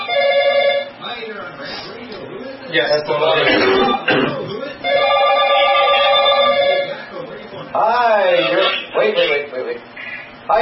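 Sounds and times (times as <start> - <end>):
telephone ringing with incoming call: 0.0 - 1.1, 4.8 - 7.1
voices: 0.8 - 10.5
speech: 2.7 - 4.5.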